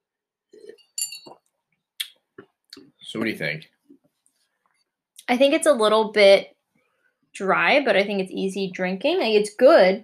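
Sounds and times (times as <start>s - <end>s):
soft low thumps of glasses being handled: 0.5s - 1.5s
wine glasses clinking in a toast: 0.6s - 1.4s
speech: 3.1s - 3.8s, 5.3s - 6.5s, 7.4s - 10.0s.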